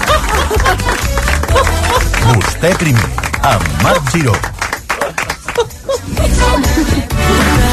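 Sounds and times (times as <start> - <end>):
studio audience applauding: 0.0 - 5.8
laughter: 0.0 - 7.6
speech: 2.6 - 4.5.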